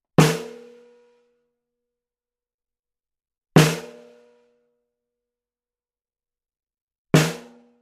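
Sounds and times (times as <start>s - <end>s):
snare drum recorded with Neumann TLM103 cardioid microphone: 0.2s - 0.6s, 7.2s - 7.5s.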